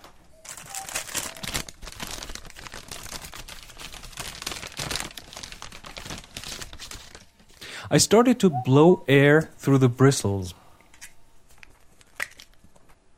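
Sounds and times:
paper bag crinkling as brush is removed: 0.0s - 7.6s
speech: 7.9s - 10.6s.

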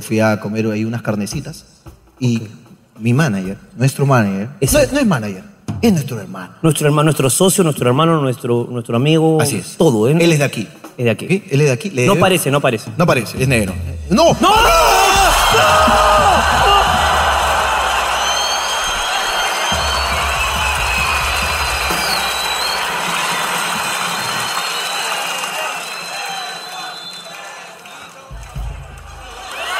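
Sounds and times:
speech: 0.0s - 16.7s
large audience chanting kiss in Spanish: 14.4s - 29.7s.

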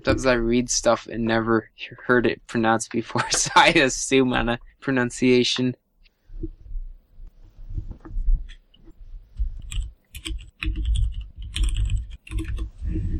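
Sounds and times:
speech: 0.0s - 5.8s
typing on a mechanical keyboard with Cherry MX Brown switches: 9.6s - 12.8s.

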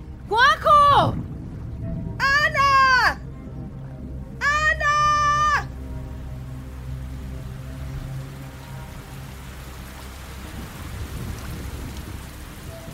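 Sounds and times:
deep thunder rumbling: 0.0s - 4.2s, 10.4s - 12.9s
steady dense rain pouring down: 0.0s - 12.9s.

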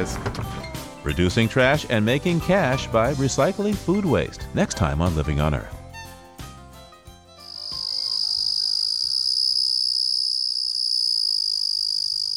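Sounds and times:
speech: 0.0s - 0.4s, 1.0s - 5.8s
Carolina ground cricket trill: 7.4s - 12.3s.

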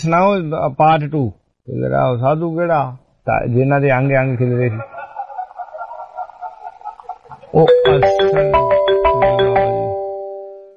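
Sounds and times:
speech: 0.0s - 5.0s, 7.6s - 9.4s
laughter: 4.2s - 8.2s
telephone ringtone melodic chime: 7.6s - 10.7s.

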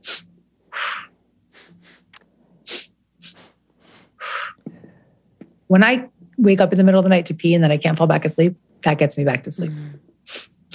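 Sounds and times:
person breathing with quick sharp inhales and longer exhales: 0.1s - 5.3s, 9.7s - 10.1s
speech: 5.7s - 10.4s.

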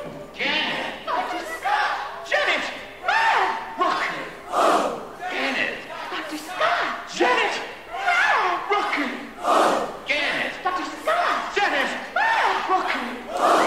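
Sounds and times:
cinema audience shouting together at an interactive film screening: 0.3s - 13.6s.

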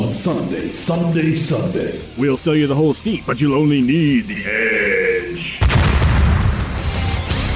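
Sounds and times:
speech: 0.1s - 6.3s
booming explosion sound effects in a promo ad: 5.6s - 7.4s.

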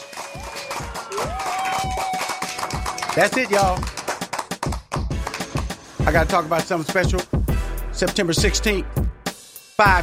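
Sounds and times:
steady audience applause: 0.0s - 5.7s
speech: 3.2s - 4.0s, 6.1s - 7.4s, 8.0s - 9.0s, 9.8s - 10.0s.

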